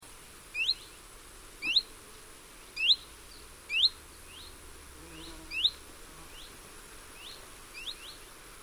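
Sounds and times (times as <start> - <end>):
common chiffchaff Phylloscopus calling at Noarootsi: 0.5 - 8.4.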